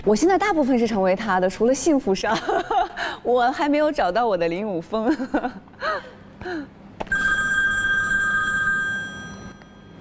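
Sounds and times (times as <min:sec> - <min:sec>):
speech: 0:00.0 - 0:06.7
telephone ringing with a bright electronic tone: 0:07.1 - 0:09.9.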